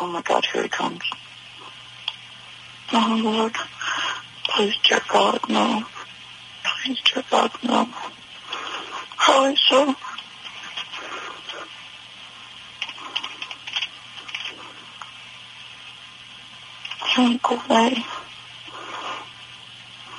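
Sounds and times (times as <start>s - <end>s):
speech: 0.0s - 1.3s, 2.9s - 3.8s, 4.5s - 6.0s, 6.8s - 8.2s, 9.2s - 10.0s, 17.2s - 18.2s
faint steady hum: 0.0s - 20.1s
typing on a computer keyboard: 12.8s - 14.6s.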